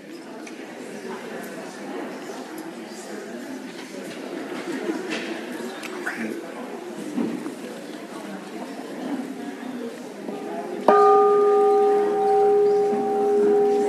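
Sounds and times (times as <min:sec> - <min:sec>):
murmur of many people chatting: 0:00.0 - 0:13.8
bell ringing: 0:10.9 - 0:13.8.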